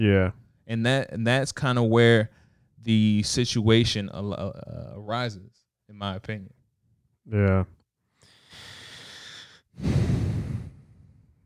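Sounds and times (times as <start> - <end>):
speech: 0.0 - 6.6, 7.2 - 7.8, 9.8 - 10.2
heavy breath with airy inhale and rough exhale: 8.2 - 11.4.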